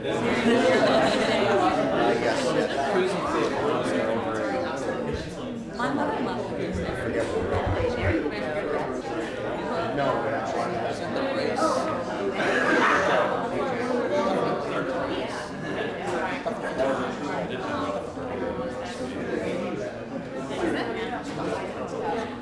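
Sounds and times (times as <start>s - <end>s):
small boxing crowd ambience: 0.0s - 22.4s.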